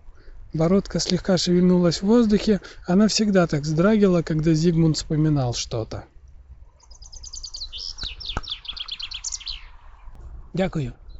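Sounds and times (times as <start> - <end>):
speech: 0.5 - 6.1, 10.6 - 11.0
small bird chirping: 6.7 - 10.2.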